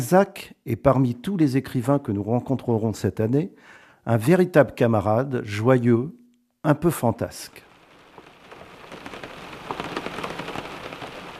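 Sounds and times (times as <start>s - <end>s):
speech: 0.0s - 7.7s
steady rain: 7.5s - 11.3s.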